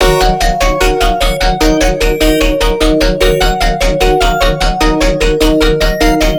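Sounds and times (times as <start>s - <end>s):
melodic color bass loop in D sharp at 150 BPM: 0.0s - 6.3s.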